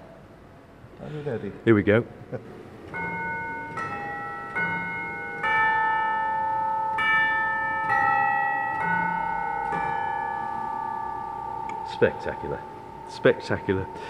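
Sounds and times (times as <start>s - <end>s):
speech: 1.0s - 3.1s, 12.0s - 14.0s
Wurlitzer organ chimes playing a slow stately melody: 2.8s - 14.0s.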